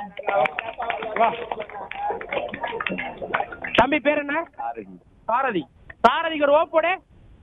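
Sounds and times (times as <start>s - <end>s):
audience clapping hands: 0.0s - 4.3s
speech: 0.1s - 7.4s.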